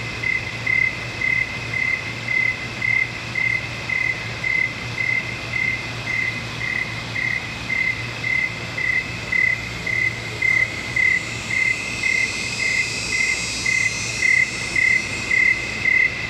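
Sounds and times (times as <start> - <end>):
cricket chirps in a swamp at night: 0.0 - 16.2
high cicada buzzing: 6.6 - 16.2.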